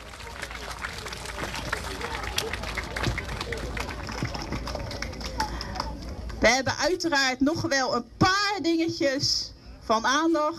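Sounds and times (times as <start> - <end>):
group of cyclists applauding: 0.0 - 6.4
faint crowd murmur: 0.0 - 10.5
speech: 6.5 - 10.5.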